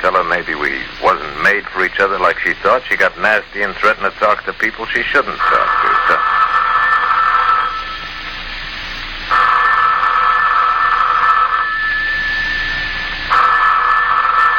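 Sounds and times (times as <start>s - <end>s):
speech: 0.0s - 6.2s
telephone ringing: 5.2s - 8.4s, 9.3s - 14.5s.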